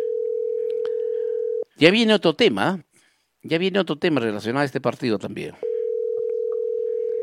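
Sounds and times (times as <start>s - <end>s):
telephone tone on an outgoing call: 0.0s - 1.7s, 5.6s - 7.2s
speech: 1.8s - 5.7s.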